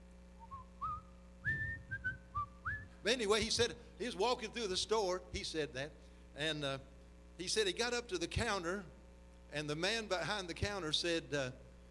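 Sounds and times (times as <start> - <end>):
low steady hum: 0.0 - 11.8
person whistling an old hymn tune: 0.4 - 3.0
speech: 3.0 - 11.6.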